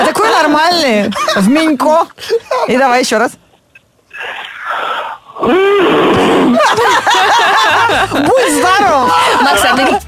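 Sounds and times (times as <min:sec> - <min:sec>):
speech: 0:00.9 - 0:03.4, 0:04.2 - 0:10.0
person imitating a camel with a harsh breathy hissing snort: 0:04.1 - 0:06.6
laughter: 0:06.2 - 0:10.0.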